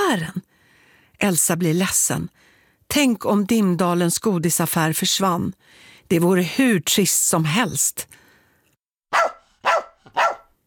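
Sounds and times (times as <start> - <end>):
speech: 0.1 - 0.5, 1.2 - 8.2, 9.1 - 9.4
dog barking loudly and shrilly: 9.1 - 10.6.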